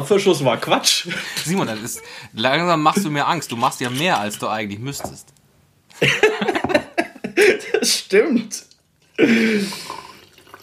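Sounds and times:
speech: 0.0s - 5.4s, 6.0s - 6.4s, 8.1s - 9.9s
laughter: 1.0s - 2.2s, 6.0s - 7.9s
trickling drips of grog: 8.6s - 10.6s
grog pouring into a glass: 9.7s - 10.6s.

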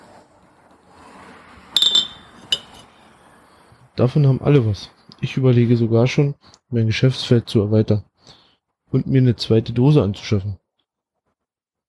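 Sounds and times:
glasses clinking in a toast: 1.8s - 2.9s
speech: 4.0s - 10.6s.

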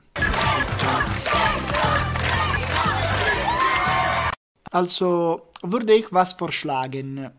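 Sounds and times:
large studio audience chanting in unison: 0.2s - 4.4s
speech: 4.7s - 7.3s.

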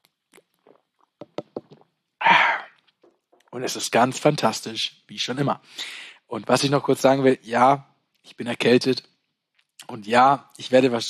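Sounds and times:
lager beer bottle clicks and taps: 0.4s - 1.9s
speech: 3.6s - 9.1s, 9.9s - 11.0s.

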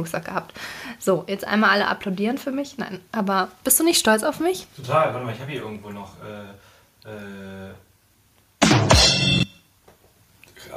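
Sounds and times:
speech: 0.0s - 7.9s
short loud drum sound effect from a soundboard: 8.6s - 9.6s.

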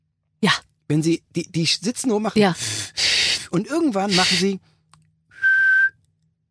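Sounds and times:
speech: 0.4s - 4.7s
child whistling: 5.4s - 5.9s.

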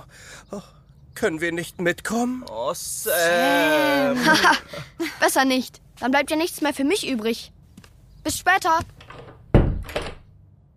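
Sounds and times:
speech: 0.4s - 7.6s, 8.2s - 9.0s
laughter: 3.2s - 5.2s
door thumping shut: 9.0s - 10.3s.

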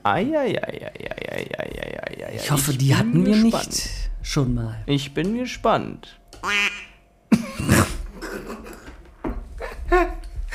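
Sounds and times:
speech: 0.0s - 1.8s, 2.4s - 6.8s
duck quacking in short nasal bursts: 6.4s - 7.0s.

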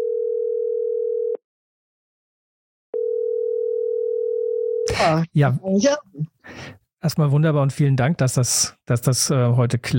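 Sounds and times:
telephone ringing tone as a call is put through: 0.0s - 1.4s, 3.0s - 4.8s
speech: 5.0s - 9.9s.

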